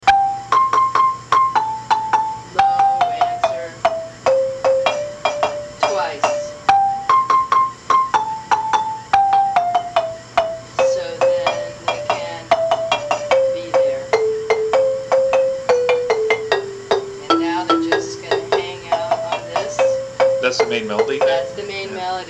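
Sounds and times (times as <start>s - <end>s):
marimba lead segue: 0.0s - 22.2s.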